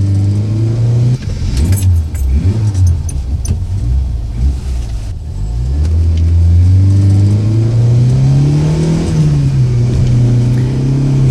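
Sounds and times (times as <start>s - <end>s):
car engine roaring as the vehicle accelerates hard: 0.0s - 11.2s
rattling, jangling noises: 1.4s - 3.7s.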